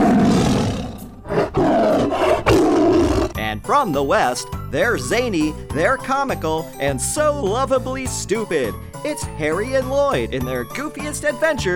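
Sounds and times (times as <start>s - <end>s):
tiger roaring: 0.0s - 3.4s
speech: 3.7s - 11.7s.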